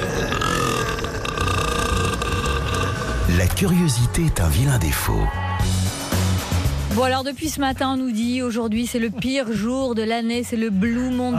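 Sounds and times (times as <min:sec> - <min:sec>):
loud guttural burp: 0:00.0 - 0:04.0
speech: 0:03.3 - 0:05.8, 0:07.0 - 0:11.3.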